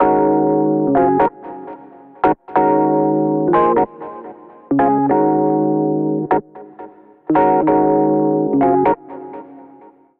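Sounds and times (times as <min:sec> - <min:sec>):
electric piano accompaniment in E-flat minor through a little amp: 0:00.0 - 0:10.0.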